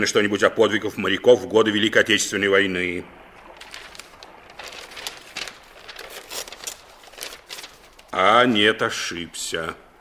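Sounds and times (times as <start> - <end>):
speech: 0.0 - 3.2, 8.1 - 9.8
paper package being handled and unwrapped: 3.4 - 8.2.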